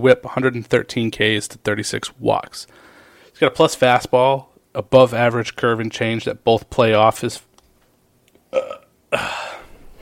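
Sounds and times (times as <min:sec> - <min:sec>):
speech: 0:00.0 - 0:07.5, 0:08.5 - 0:09.5
person hiccuping: 0:08.5 - 0:09.4
person burping: 0:08.5 - 0:09.7.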